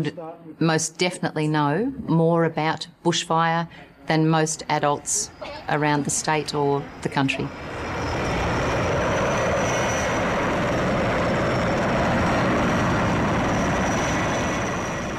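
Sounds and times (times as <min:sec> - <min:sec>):
speech: 0:00.0 - 0:08.2
firefighting helicopter engine and rotor flying overhead: 0:05.0 - 0:15.1.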